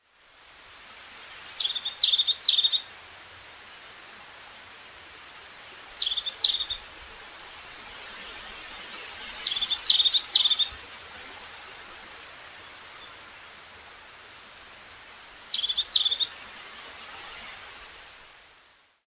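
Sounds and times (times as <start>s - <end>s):
crested tit: 1.6s - 2.9s, 6.0s - 6.9s, 9.4s - 10.8s, 15.5s - 16.4s.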